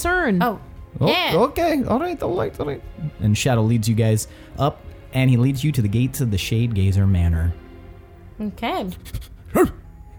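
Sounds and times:
speech: 0.0 - 7.6, 8.4 - 9.8
wolf giving a short sharp bark: 8.9 - 9.9.

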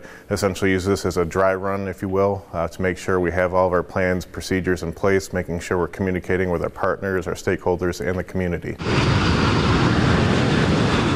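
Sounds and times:
speech: 0.3 - 9.4
airplane engine roar: 8.8 - 11.1.

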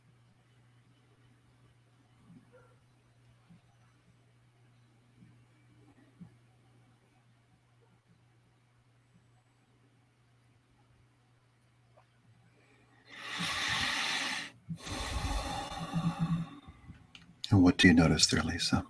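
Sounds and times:
deep breath in: 13.1 - 17.0
speech: 17.5 - 18.8.

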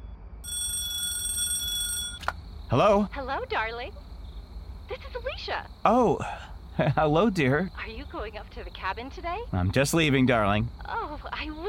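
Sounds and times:
low hum: 0.0 - 11.6
telephone ringing with an electronic tone: 0.4 - 2.3
speech: 2.7 - 4.1, 4.9 - 11.6.

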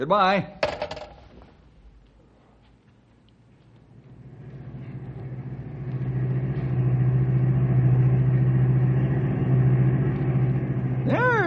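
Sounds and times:
speech: 0.0 - 0.6
car engine humming while driving and accelerating: 4.0 - 11.4.

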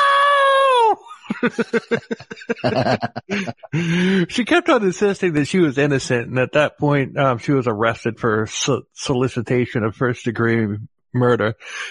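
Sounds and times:
woman screeching in distress: 0.0 - 1.0
woman sobbing in gasping bursts: 0.6 - 4.3
laughter: 0.9 - 6.2
speech: 1.4 - 11.9.

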